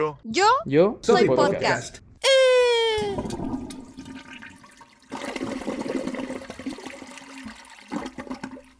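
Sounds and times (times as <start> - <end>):
speech: 0.0 - 3.5
toilet flushing in a bathroom: 3.2 - 8.7.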